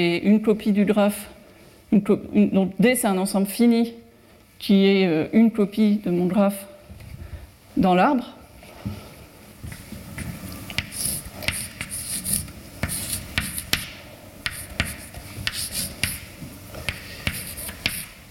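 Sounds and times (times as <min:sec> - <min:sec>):
speech: 0:00.0 - 0:04.0, 0:04.6 - 0:06.7, 0:07.8 - 0:09.0
writing on a board during a mathematics lecture: 0:09.7 - 0:18.2.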